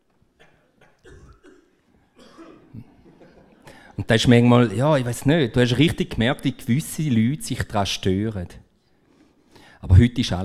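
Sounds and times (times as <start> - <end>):
person coughing harshly: 0.4 - 3.8
speech: 4.1 - 8.6, 9.8 - 10.4.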